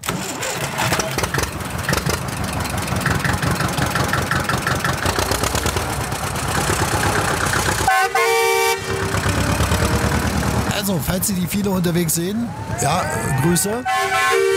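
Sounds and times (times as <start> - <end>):
green tractor engine chugging and pulling away: 0.0 - 13.1
tractor horn toot: 7.8 - 10.6, 12.8 - 14.5
speech: 11.1 - 14.5.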